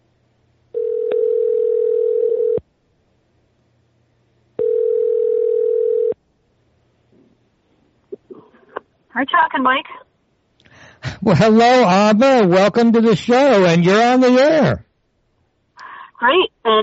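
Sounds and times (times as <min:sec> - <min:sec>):
long steady telephone tones as a call is placed: 0:00.7 - 0:02.6, 0:04.6 - 0:06.2
speech: 0:09.2 - 0:10.0, 0:11.2 - 0:14.8, 0:16.2 - 0:16.8.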